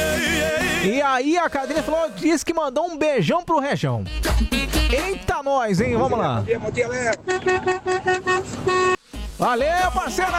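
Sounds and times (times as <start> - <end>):
speech: 0.8 - 10.3
horn or vuvuzela tooting: 4.0 - 5.4, 7.1 - 9.4.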